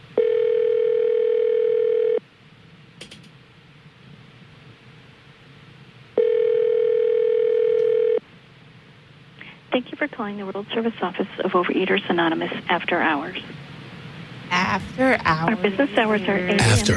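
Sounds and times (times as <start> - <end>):
faint hiss: 0.0 - 16.9
phone ringback tone: 0.2 - 2.2, 6.2 - 8.2
speech: 10.0 - 13.7, 14.7 - 16.9.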